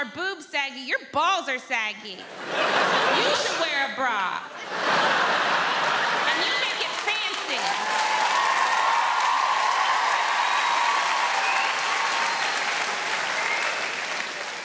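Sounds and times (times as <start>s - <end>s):
speech: 0.0s - 5.8s
laughter: 2.2s - 8.1s
audience of women clapping: 5.3s - 14.6s.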